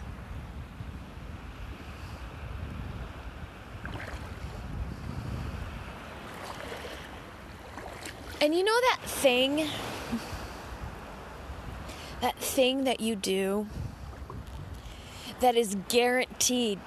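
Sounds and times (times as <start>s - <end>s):
gusty wind buffeting the microphone: 0.0s - 16.8s
waves washing onto a Gulf shoreline: 0.0s - 16.8s
water breaking in brighter splashes: 3.8s - 4.6s, 6.2s - 10.2s
speech: 8.4s - 10.2s, 12.2s - 13.8s, 15.4s - 16.8s.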